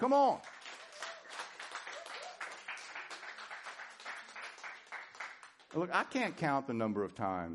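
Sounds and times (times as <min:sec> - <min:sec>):
speech: 0:00.0 - 0:00.5, 0:05.7 - 0:07.5
audience applauding in a large room: 0:00.0 - 0:05.9.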